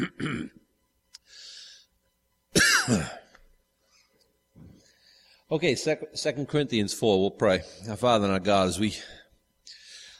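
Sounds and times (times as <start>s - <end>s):
person coughing: 0.0s - 0.6s, 2.6s - 3.4s
person clearing throat: 0.0s - 0.7s, 2.6s - 3.4s
quiet breaths: 1.1s - 2.2s, 3.3s - 5.6s, 8.9s - 10.1s
speech: 2.9s - 3.2s, 5.5s - 9.2s.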